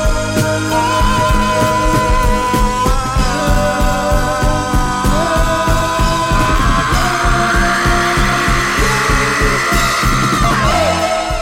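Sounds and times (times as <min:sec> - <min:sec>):
loud pulsing distorted bass in heavy music: 0:00.2 - 0:11.3
long drawn-out scream: 0:00.7 - 0:11.3.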